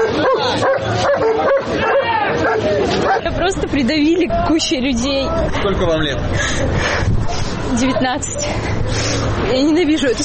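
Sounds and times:
police service dogs barking and yipping: 0.0s - 3.4s
busy crowd noise and voices at a rally: 0.0s - 10.2s
speech: 3.4s - 10.2s.

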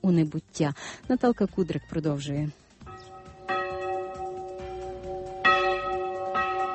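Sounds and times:
speech: 0.1s - 2.6s
church bells ringing in a steady peal: 2.9s - 6.7s.

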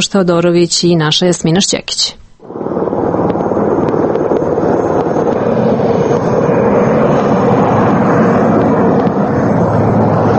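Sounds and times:
speech: 0.0s - 2.6s
helicopter flying overhead: 2.4s - 10.3s.

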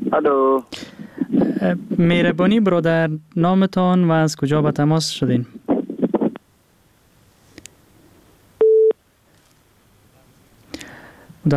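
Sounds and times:
speech: 0.1s - 5.6s
telephone line tone after a caller's line drops: 8.6s - 9.0s.

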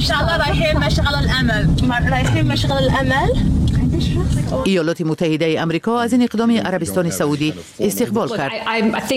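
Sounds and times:
low rumble of road and engine noise inside a moving car: 0.0s - 4.7s
speech: 0.0s - 9.1s.

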